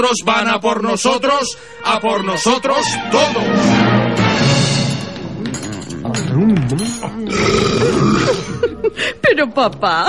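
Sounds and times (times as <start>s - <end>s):
speech: 0.0s - 4.0s, 6.4s - 8.4s, 9.0s - 10.0s
elderly man belching: 5.4s - 8.7s.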